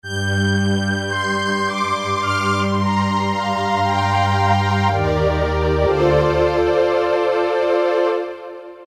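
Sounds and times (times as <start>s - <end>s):
analog synth strings from a Roland PN-D50-03: 0.0s - 8.7s.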